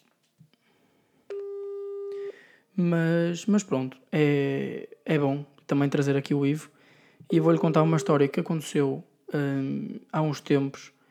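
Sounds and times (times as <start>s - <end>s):
outgoing WhatsApp call ringing tone: 1.3s - 2.3s, 7.3s - 8.4s
speech: 2.8s - 11.0s.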